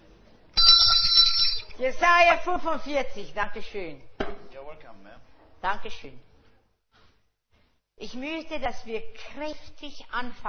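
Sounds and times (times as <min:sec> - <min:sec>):
hand bell struck at a church service: 0:00.6 - 0:01.7
speech: 0:01.8 - 0:04.1, 0:04.8 - 0:06.3, 0:08.0 - 0:10.4.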